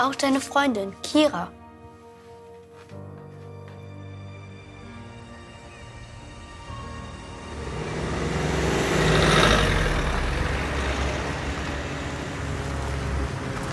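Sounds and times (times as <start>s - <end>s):
speech: 0.0s - 1.6s
small van engine rumbling while driving onto an abandoned site into a warehouse: 6.0s - 13.7s.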